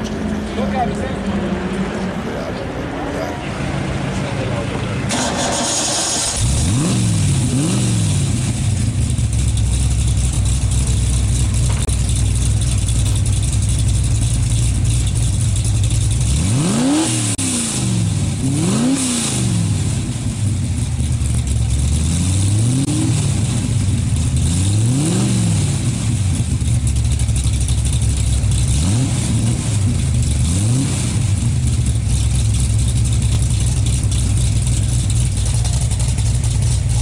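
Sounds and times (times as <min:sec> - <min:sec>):
voices at a racetrack: 0:00.0 - 0:05.6
car engines revving at a racetrack: 0:00.0 - 0:36.9.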